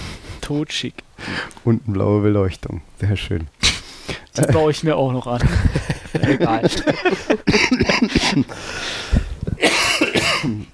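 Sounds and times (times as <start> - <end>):
speech: 0.5 - 3.6, 4.4 - 9.8
laughter: 5.4 - 8.5
harsh throaty coughing: 5.5 - 8.7, 9.5 - 10.7
noisy throat clearing: 9.5 - 10.7.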